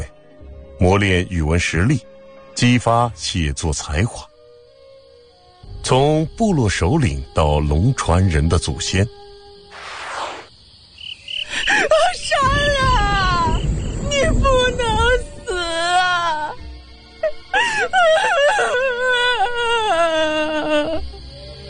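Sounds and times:
insect-like chirping: 0.0s - 21.6s
speech: 0.8s - 4.3s, 5.8s - 9.2s
burst of broadband noise: 9.7s - 10.5s
person wailing and sobbing: 17.2s - 21.1s.

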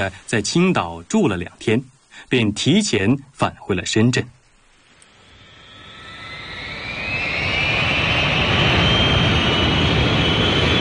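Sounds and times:
speech: 0.0s - 4.4s
jet engine roar inside an airplane cabin on a flight: 5.0s - 10.7s.

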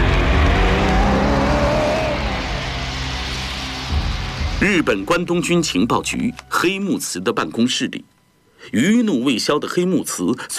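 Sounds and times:
car engine driving off: 0.0s - 5.1s
speech: 4.6s - 10.5s.

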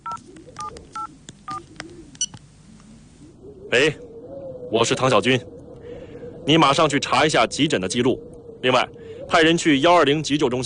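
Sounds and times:
phone keypad dialing tones: 0.0s - 2.4s
low hum: 0.0s - 10.6s
speech: 3.7s - 4.0s, 4.7s - 5.6s, 6.4s - 10.6s.

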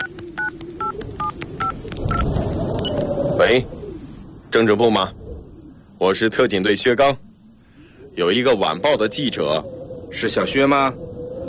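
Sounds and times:
electronic keypad beeps of a mobile phone being dialed: 0.0s - 2.2s
speech: 3.4s - 3.8s, 4.5s - 5.2s, 6.0s - 7.3s, 8.2s - 11.1s.

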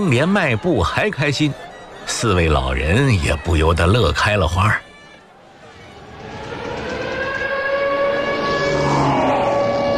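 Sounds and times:
speech: 0.0s - 4.8s
warplanes roaring: 5.3s - 9.9s
air raid siren wailing: 5.4s - 9.9s.

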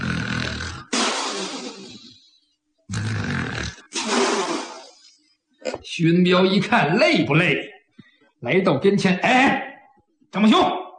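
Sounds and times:
voice imitating thunder-like snoring of a drunk man: 0.0s - 2.3s, 2.9s - 5.1s
speech: 6.0s - 7.7s, 8.4s - 9.7s, 10.3s - 10.8s.

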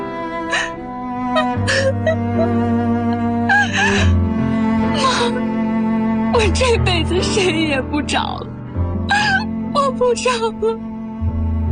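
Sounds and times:
steady tonal background: 0.0s - 11.7s
woman crying loudly in her mother's arms: 0.6s - 4.2s, 4.9s - 5.4s, 9.1s - 10.8s
speech: 1.6s - 2.7s, 6.4s - 8.5s, 9.9s - 10.9s.

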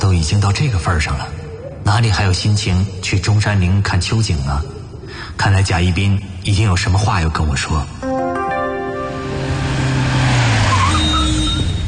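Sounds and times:
speech: 0.0s - 8.1s
car engine droning while driving: 9.1s - 11.8s.

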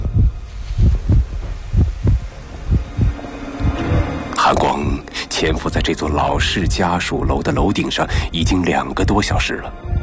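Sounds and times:
deep heartbeat thumping: 0.0s - 4.2s, 6.5s - 7.6s, 8.4s - 10.0s
low hum: 0.0s - 7.6s
speech: 4.5s - 9.9s.

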